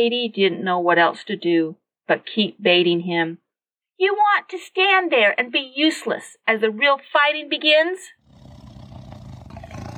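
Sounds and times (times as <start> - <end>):
speech: 0.0 - 3.4, 4.0 - 8.2
tiger's low warning growl: 8.2 - 9.9.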